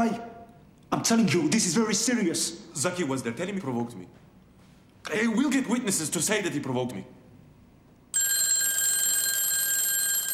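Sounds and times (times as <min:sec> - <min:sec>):
speech: 0:00.0 - 0:00.3, 0:01.0 - 0:04.2, 0:05.1 - 0:07.2
telephone with a loud steady electronic ring: 0:08.1 - 0:10.3.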